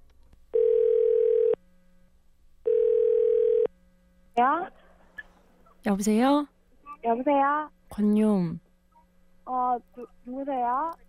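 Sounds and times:
telephone tones as a call is placed: 0.5 - 1.6, 2.7 - 3.7
speech: 5.8 - 8.6, 9.5 - 11.0.

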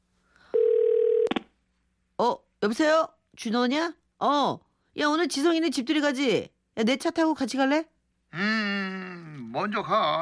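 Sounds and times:
telephone dial tone: 0.5 - 1.4
speech: 2.2 - 8.8, 9.5 - 10.2.

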